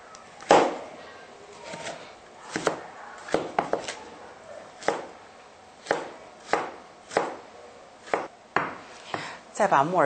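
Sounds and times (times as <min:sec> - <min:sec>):
kitchen knife chopping red carrots on a cutting board: 0:01.7 - 0:04.0, 0:04.8 - 0:05.2, 0:05.8 - 0:07.4, 0:08.0 - 0:09.2.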